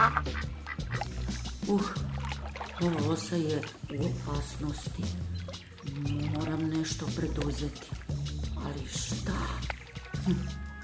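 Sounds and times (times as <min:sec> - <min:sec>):
duck swimming on water quacking: 0:00.0 - 0:01.2
speech: 0:01.7 - 0:02.1, 0:02.8 - 0:08.0, 0:08.6 - 0:10.6.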